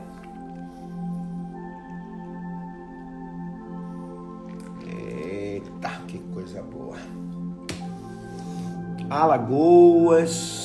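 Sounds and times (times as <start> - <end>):
water pouring into a cup of coffee: 4.4 - 5.4
speech: 9.1 - 10.6.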